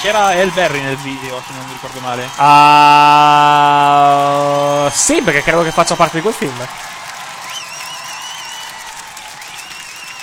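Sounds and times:
speech: 0.0s - 7.0s
applause from a large crowd: 0.0s - 10.2s
cheering: 0.0s - 10.2s
high whistles: 7.4s - 10.2s.

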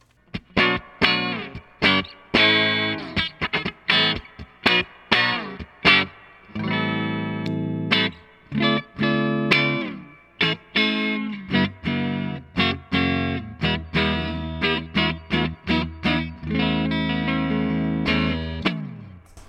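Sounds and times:
clean electric guitar through a tube amp with spring reverb: 0.4s - 19.2s.

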